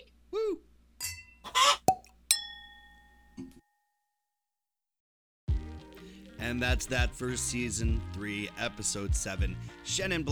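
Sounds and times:
wine glasses clinking in a toast: 0:01.0 - 0:03.1
speech: 0:06.5 - 0:10.3.

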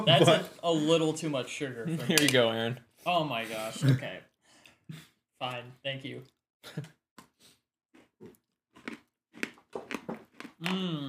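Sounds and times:
speech: 0:00.0 - 0:04.3, 0:04.9 - 0:07.0, 0:10.6 - 0:11.0
biting and chewing frosted gingerbread: 0:07.9 - 0:11.0.

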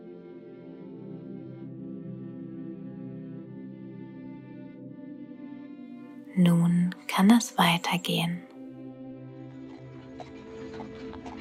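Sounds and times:
speech: 0:06.4 - 0:08.5
horse hooves clip-clopping as a horse-drawn carriage sets off: 0:09.7 - 0:11.3.

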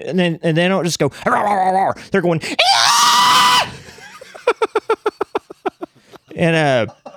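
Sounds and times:
speech: 0:00.0 - 0:02.7, 0:06.4 - 0:07.0
person vocally imitating two Boston Terriers screaming while fighting: 0:01.1 - 0:03.9
laughter: 0:03.3 - 0:07.1.

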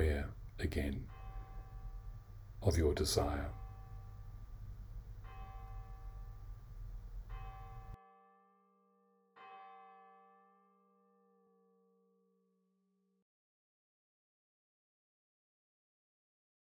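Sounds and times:
bell ringing in clear resonant strikes: 0:00.0 - 0:08.0
speech: 0:00.2 - 0:01.2, 0:02.6 - 0:03.6.

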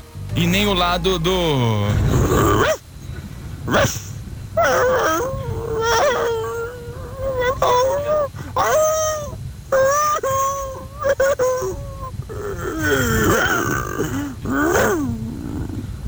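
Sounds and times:
speech: 0:00.4 - 0:02.8, 0:03.6 - 0:05.4
dog growling and snarling: 0:01.9 - 0:02.8, 0:03.6 - 0:16.0
dog barking: 0:03.7 - 0:09.3.

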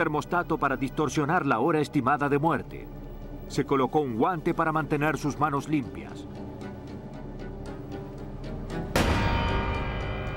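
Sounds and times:
speech: 0:00.0 - 0:06.5
single loud gunshot fired by a man: 0:09.0 - 0:10.2.

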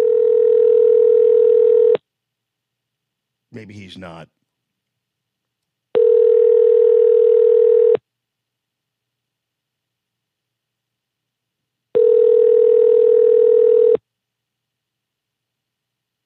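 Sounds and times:
outgoing phone call ringback tone: 0:00.0 - 0:02.0, 0:06.0 - 0:08.0, 0:12.0 - 0:14.0
speech: 0:03.6 - 0:04.4.

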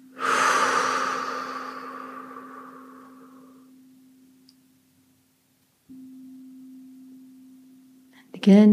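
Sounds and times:
deep airy breathing in and out: 0:00.0 - 0:03.7
faint steady hum: 0:00.0 - 0:08.7
speech: 0:08.4 - 0:08.7.

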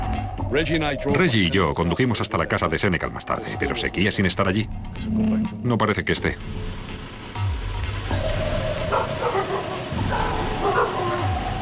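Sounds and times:
speech: 0:00.5 - 0:06.8
dogs barking: 0:08.2 - 0:11.6.

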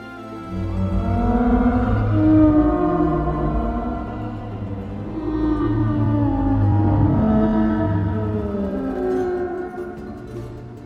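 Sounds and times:
humpback whale song calls: 0:00.5 - 0:10.7
low rumble: 0:00.5 - 0:10.8.

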